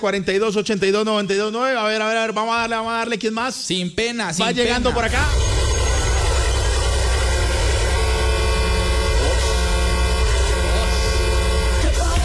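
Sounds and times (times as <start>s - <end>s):
speech: 0.0s - 5.7s
loud car horn blaring: 4.7s - 12.2s.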